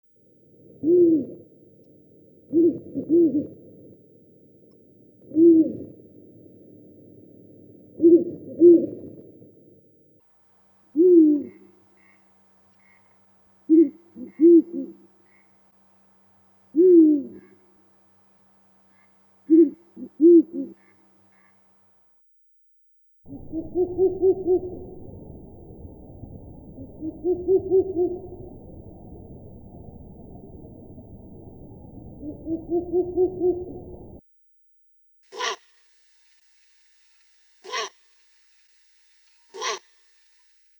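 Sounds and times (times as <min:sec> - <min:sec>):
Strix uralensis: 0:00.5 - 0:09.8, 0:10.5 - 0:15.7, 0:16.6 - 0:18.0, 0:18.8 - 0:21.7, 0:23.3 - 0:25.1, 0:26.8 - 0:28.7, 0:32.1 - 0:34.2, 0:35.3 - 0:40.7.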